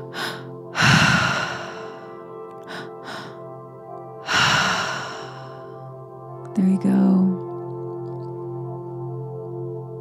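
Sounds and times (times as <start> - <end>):
forceful breathing during a triactive breathwork exercise: 0.0 - 3.4, 4.2 - 5.7
speech: 6.6 - 7.2.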